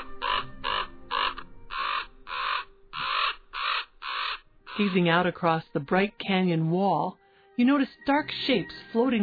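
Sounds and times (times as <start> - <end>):
common ravens calling and squabbling in scraggly pines: 0.0 - 5.3
speech: 4.8 - 9.2.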